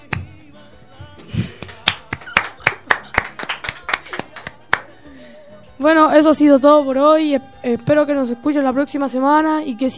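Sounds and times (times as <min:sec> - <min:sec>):
small group applauding: 0:01.6 - 0:05.0
speech: 0:05.8 - 0:09.9.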